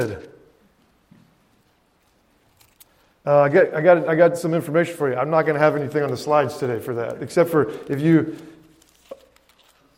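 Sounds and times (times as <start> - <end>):
speech: 0.0 - 0.3, 3.2 - 8.6
thin Bible pages being turned: 5.9 - 9.9.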